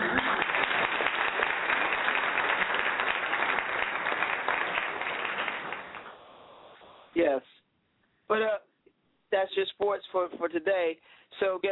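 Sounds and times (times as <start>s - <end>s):
crowd applauding: 0.0s - 6.2s
speech: 9.4s - 11.7s.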